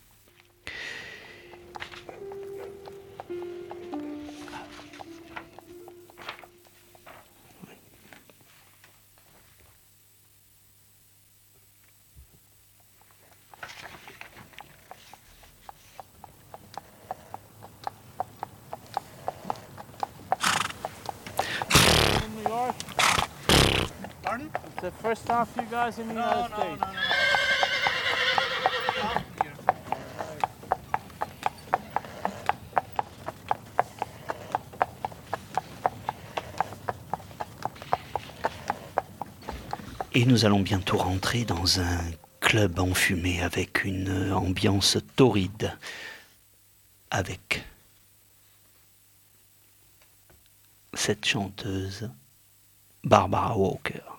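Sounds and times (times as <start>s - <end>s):
horse hooves clip-clopping pulling a horse-drawn carriage along New York streets: 0.0s - 9.8s, 12.2s - 44.9s
horse snorting: 0.7s - 6.1s, 14.0s - 42.2s
horse whinnying: 16.8s - 40.2s
speech: 24.9s - 27.0s, 40.2s - 46.0s, 47.1s - 47.6s, 51.1s - 52.2s, 53.1s - 54.0s.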